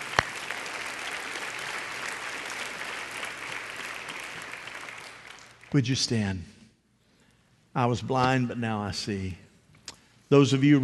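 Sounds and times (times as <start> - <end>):
congregation applauding: 0.0 - 5.8
speech: 5.7 - 6.6, 7.8 - 9.4, 10.3 - 10.8.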